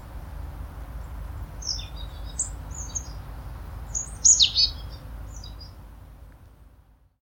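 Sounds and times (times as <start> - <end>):
faint steady hiss: 0.0 - 7.2
marsh tit Poecile palustris calling: 1.6 - 3.2, 3.9 - 5.8.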